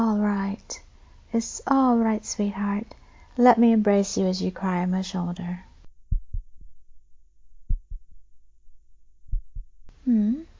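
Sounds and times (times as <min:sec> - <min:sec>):
speech: 0:00.7 - 0:05.7, 0:10.1 - 0:10.5
slow heartbeat: 0:05.9 - 0:09.9.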